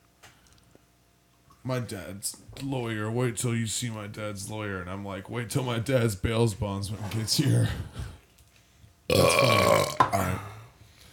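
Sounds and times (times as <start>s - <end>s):
speech: 1.6s - 8.0s
loud long belch: 9.1s - 10.4s.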